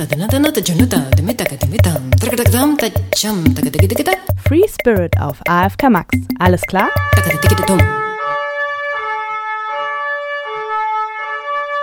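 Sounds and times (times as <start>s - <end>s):
speech: 0.0s - 8.0s
emergency vehicle siren in a two-tone pattern: 6.9s - 11.8s.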